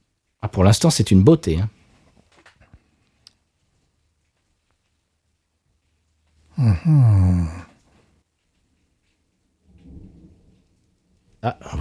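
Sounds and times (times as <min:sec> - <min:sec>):
speech: 0:00.4 - 0:01.8, 0:06.8 - 0:07.7, 0:11.4 - 0:11.7
steady rain during a storm: 0:01.8 - 0:11.7
deep heavy thunder rumbling during a storm: 0:09.6 - 0:11.7.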